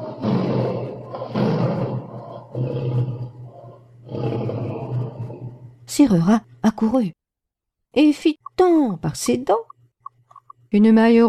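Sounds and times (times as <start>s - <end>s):
lion roaring: 0.0s - 5.8s
speech: 6.0s - 7.2s, 7.9s - 9.7s, 10.7s - 11.2s.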